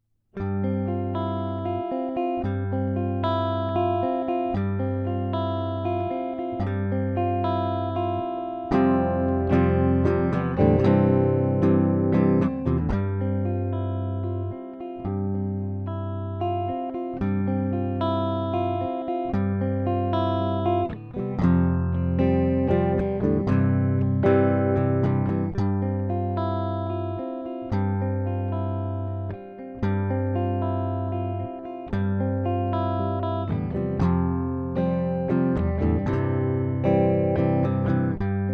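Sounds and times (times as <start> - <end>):
riffs: 0.4 - 38.5.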